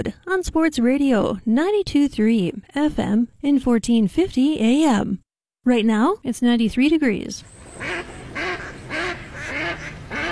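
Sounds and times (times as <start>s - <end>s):
speech: 0.0s - 8.1s
ducks quacking: 7.7s - 10.2s.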